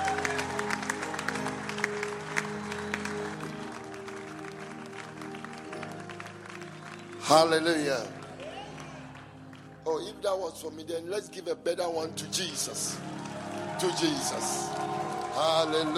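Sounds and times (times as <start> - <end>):
loud vocal cheering from a crowd: 0.0 - 7.6, 8.2 - 9.4, 12.9 - 15.9
crowd clapping: 0.0 - 10.2, 12.8 - 15.9
music: 0.0 - 15.9
speech: 7.3 - 8.2, 9.9 - 13.2, 13.8 - 15.9.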